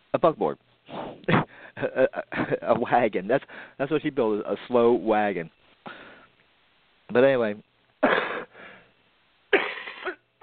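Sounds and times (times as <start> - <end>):
speech: 0.1 - 0.7, 1.3 - 6.0, 7.1 - 8.2
person coughing: 8.0 - 8.5, 9.5 - 10.4.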